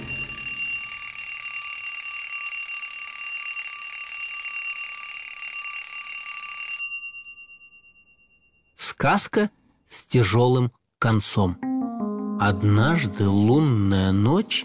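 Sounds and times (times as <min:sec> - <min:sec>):
alarm clock ringing with a metallic clatter: 0:00.0 - 0:08.8
speech: 0:09.0 - 0:11.6, 0:12.4 - 0:14.6.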